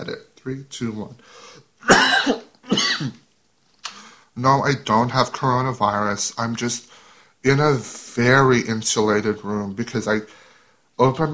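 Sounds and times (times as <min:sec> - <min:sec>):
speech: 0:00.1 - 0:03.2, 0:04.4 - 0:10.4, 0:11.0 - 0:11.3
harsh rasping coughs in a closed well-insulated room: 0:01.8 - 0:03.2.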